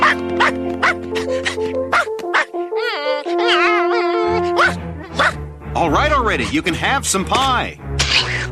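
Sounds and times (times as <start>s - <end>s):
dog begging for food with short yips and barks: 0.0s - 1.0s, 1.9s - 5.4s
dog begging for food with warbling whines: 2.4s - 5.4s
speech: 6.3s - 8.4s.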